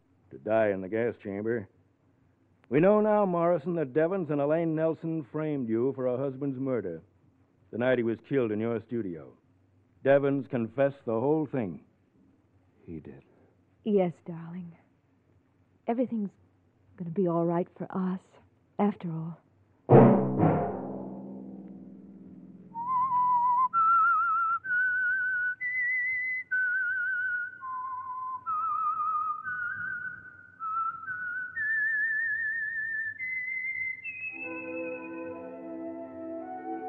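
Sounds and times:
speech: 0:00.3 - 0:01.8, 0:02.7 - 0:07.1, 0:07.7 - 0:09.4, 0:10.0 - 0:11.9, 0:12.9 - 0:14.8, 0:15.9 - 0:16.4, 0:17.0 - 0:19.4
low orchestral chord: 0:19.9 - 0:22.8, 0:34.4 - 0:36.8
sustained instruments: 0:19.9 - 0:23.2, 0:34.3 - 0:36.8
lone whistler whistling a slow theme tune: 0:22.7 - 0:36.8.

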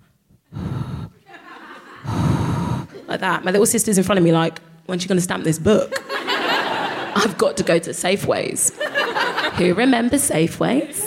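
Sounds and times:
person imitating loud audible breathing: 0:00.5 - 0:01.2, 0:02.0 - 0:03.0
laughter: 0:01.2 - 0:02.1, 0:05.9 - 0:07.4, 0:08.7 - 0:09.9, 0:10.7 - 0:11.0
speech: 0:03.1 - 0:06.0, 0:07.2 - 0:11.0.

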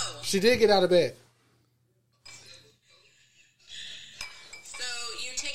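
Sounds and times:
speech: 0:00.3 - 0:01.2
glass clinking while mixing a martini: 0:04.1 - 0:05.1.

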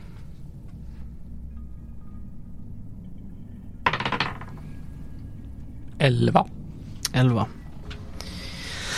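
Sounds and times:
dice rolled across a hard tabletop: 0:03.8 - 0:04.6
speech: 0:06.0 - 0:07.6.

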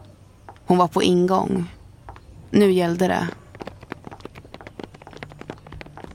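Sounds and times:
faint low hum: 0:00.0 - 0:06.1
speech: 0:00.6 - 0:01.8, 0:02.5 - 0:03.4
woman's high heels clicking on asphalt of a parking lot: 0:03.1 - 0:06.1.

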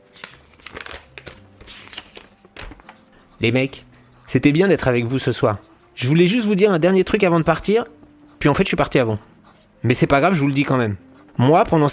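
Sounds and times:
sheet of paper being unfolded: 0:00.0 - 0:03.1
speech: 0:03.4 - 0:11.9.

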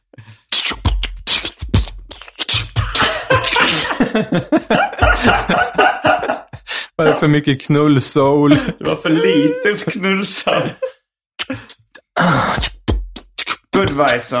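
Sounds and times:
person beatboxing: 0:00.4 - 0:04.0, 0:11.4 - 0:14.3
laughter: 0:02.9 - 0:07.4, 0:08.2 - 0:11.0
speech: 0:04.2 - 0:05.6, 0:07.0 - 0:12.7, 0:13.8 - 0:14.3.

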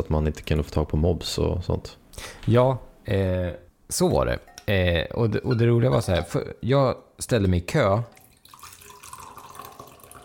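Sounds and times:
speech: 0:00.1 - 0:08.2
coffee pouring into a cup: 0:08.1 - 0:10.2.

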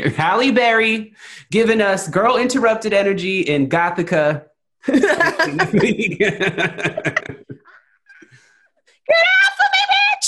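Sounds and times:
speech: 0:00.0 - 0:07.4, 0:09.1 - 0:09.3
laughter: 0:04.9 - 0:08.3
woman screaming in film clip: 0:09.1 - 0:10.2.

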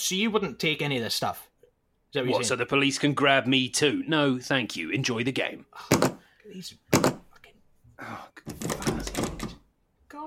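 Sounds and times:
speech: 0:00.0 - 0:01.5, 0:02.1 - 0:07.2, 0:08.0 - 0:09.5
locked door being tried and rattled: 0:08.5 - 0:09.6
knocking and jostling at a locked door: 0:08.5 - 0:09.7.

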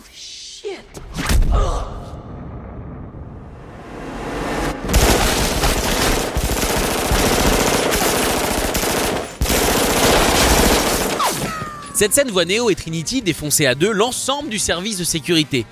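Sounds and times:
sharp impacts: 0:02.2 - 0:07.6
automatic machine-gun fire from a film shootout scene: 0:04.9 - 0:11.6
speech: 0:12.0 - 0:15.7.

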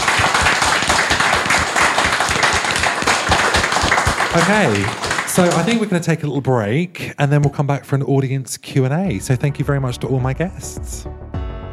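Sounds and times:
crowd applauding: 0:00.0 - 0:06.1
speech: 0:04.4 - 0:11.3.

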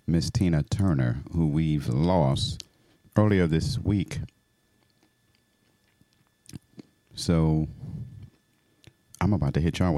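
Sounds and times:
speech: 0:00.1 - 0:04.4, 0:07.2 - 0:08.1, 0:09.2 - 0:09.9
chewing of sunflower seeds: 0:04.2 - 0:07.2
sharp crunching crack of sunflower seed: 0:04.8 - 0:07.2.

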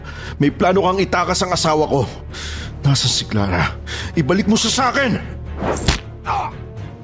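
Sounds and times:
speech: 0:00.4 - 0:06.0
quick swish: 0:05.6 - 0:06.0
heavy punch to the face thud: 0:05.6 - 0:06.1.

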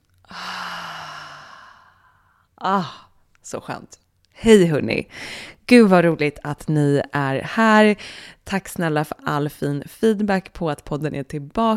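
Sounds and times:
long breathy exhale through the mouth: 0:00.3 - 0:02.4
speech: 0:02.6 - 0:11.7.

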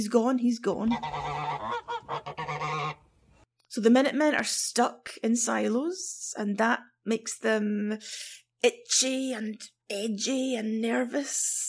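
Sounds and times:
speech: 0:00.0 - 0:01.3, 0:03.7 - 0:11.6
flock of geese honking: 0:00.9 - 0:03.0.

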